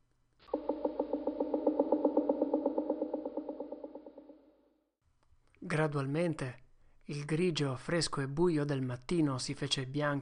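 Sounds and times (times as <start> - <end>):
woodpecker hammering on wood: 0.5 - 4.4
speech: 5.7 - 10.2.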